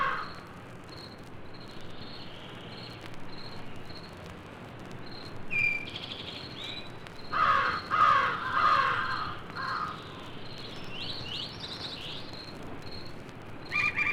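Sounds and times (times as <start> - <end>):
crow giving harsh caws: 0.0 - 0.4, 7.3 - 10.1.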